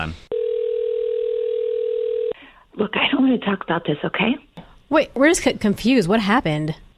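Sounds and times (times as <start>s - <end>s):
speech: 0.0s - 0.3s, 2.8s - 6.8s
telephone dial tone: 0.3s - 2.4s.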